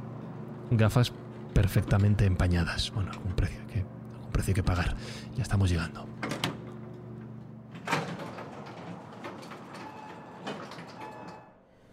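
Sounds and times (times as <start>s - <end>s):
automatic sliding door of a hospital intensive care unit whirring open: 0.0s - 3.4s, 6.0s - 11.9s
steady tonal beep-like hum: 0.0s - 11.9s
speech: 0.7s - 6.2s
clunks: 1.2s - 2.4s, 6.2s - 11.6s.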